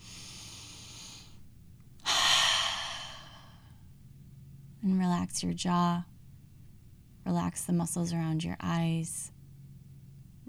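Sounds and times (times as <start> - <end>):
deep breath: 0.0 - 1.4, 2.0 - 3.8
speech: 4.8 - 6.1, 7.3 - 9.4.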